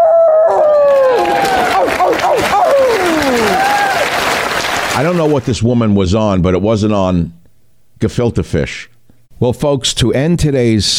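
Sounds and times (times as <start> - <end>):
human voices imitating wolf howls at an awards ceremony: 0.0 - 4.1
applause: 0.9 - 5.5
steady crowd noise: 1.0 - 5.4
speech: 5.0 - 7.4, 8.0 - 10.9.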